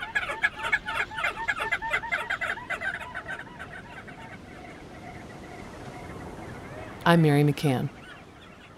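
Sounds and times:
flock of crested auklets yipping: 0:00.0 - 0:07.2, 0:07.9 - 0:08.7
speech: 0:07.1 - 0:08.0.

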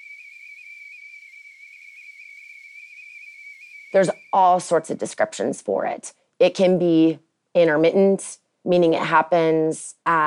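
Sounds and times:
tea kettle whistle simulating tinnitus: 0:00.0 - 0:04.6
speech: 0:03.9 - 0:10.2.

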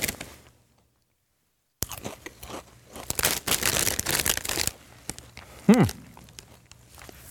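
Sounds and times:
chili-flavoured potato chips being crunched and chewed: 0:01.8 - 0:07.2
speech: 0:05.7 - 0:06.0.

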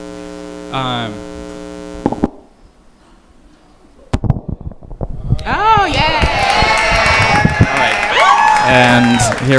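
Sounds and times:
electrical hum: 0:00.0 - 0:09.5
live audience cheering and whooping: 0:05.4 - 0:09.5
live audience clapping: 0:05.9 - 0:09.5.

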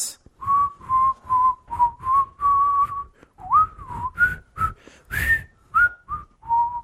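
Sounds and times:
person whistling short tuneful notes: 0:00.4 - 0:06.8.

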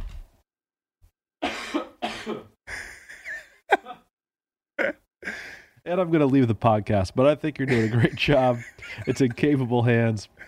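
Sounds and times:
harsh coughing: 0:01.4 - 0:04.1, 0:07.7 - 0:09.2
speech: 0:05.9 - 0:10.4
laughter: 0:07.6 - 0:10.4.

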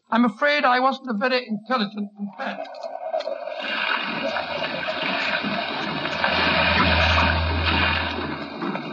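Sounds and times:
speech: 0:00.1 - 0:05.2
rough sea waves around small fishing boat: 0:03.6 - 0:08.9
deep rumble: 0:04.3 - 0:08.9.

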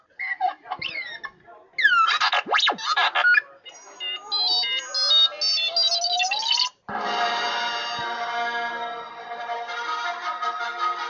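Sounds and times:
remote-control robot replica chirping, whistling and warbling: 0:00.2 - 0:06.8
tinny musical theme from a robot replica's small speaker: 0:06.9 - 0:11.0.

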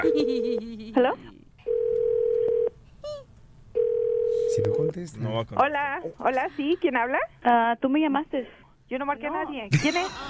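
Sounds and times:
speech: 0:00.0 - 0:01.3, 0:04.6 - 0:10.2
electronic telephone DTMF tones: 0:01.7 - 0:02.7, 0:03.8 - 0:04.9.

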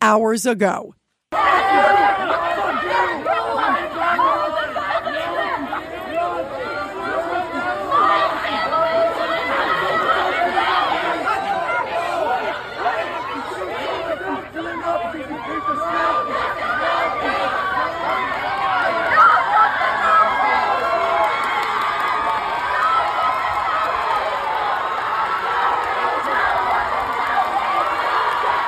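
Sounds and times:
speech: 0:00.1 - 0:02.4
large outdoor crowd shouting at pro-Palestinian rally at UNC Chapel Hill: 0:01.3 - 0:28.6.

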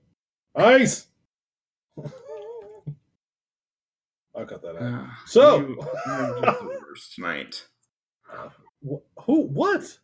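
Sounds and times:
speech: 0:00.6 - 0:01.1, 0:02.0 - 0:02.2, 0:04.4 - 0:07.7, 0:08.3 - 0:10.0
pet dog whining: 0:02.0 - 0:03.0
laughter: 0:05.7 - 0:07.0.

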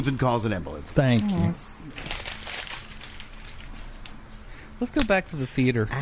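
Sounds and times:
speech: 0:00.0 - 0:02.2, 0:04.8 - 0:06.0
paper being crumpled: 0:01.8 - 0:05.6.

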